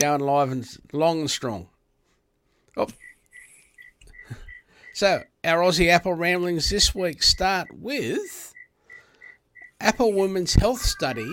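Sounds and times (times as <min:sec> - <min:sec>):
speech: 0:00.0 - 0:01.7, 0:02.8 - 0:03.1, 0:05.0 - 0:08.5, 0:09.8 - 0:11.3
cricket chirping in a house: 0:03.0 - 0:05.0, 0:08.5 - 0:09.8.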